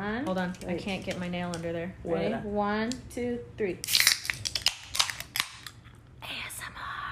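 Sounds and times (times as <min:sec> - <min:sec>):
speech: 0:00.2 - 0:04.1
Topo Chico seltzer cans cracked open: 0:03.8 - 0:05.8.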